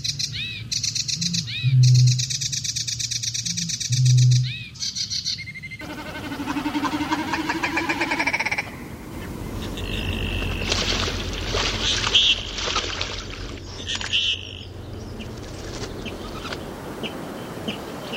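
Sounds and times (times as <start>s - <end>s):
marsh warbler singing: 0.0s - 18.1s
low rumble: 8.6s - 17.5s.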